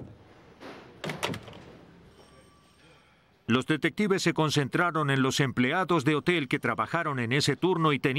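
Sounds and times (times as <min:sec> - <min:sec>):
hotel room door closing: 0:00.0 - 0:01.9
speech: 0:03.5 - 0:08.1.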